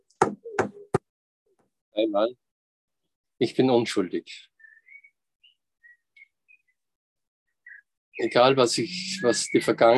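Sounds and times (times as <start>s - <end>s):
knocking on a wooden table: 0.2s - 1.1s
speech: 2.0s - 2.5s, 3.4s - 4.5s, 8.2s - 9.9s.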